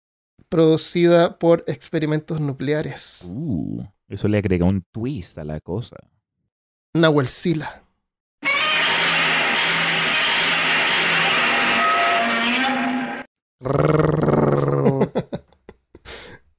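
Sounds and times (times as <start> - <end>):
speech: 0.5 - 6.2, 6.9 - 7.8, 13.6 - 14.5
giant movie monster roaring: 8.4 - 15.0
laughter: 14.8 - 15.6.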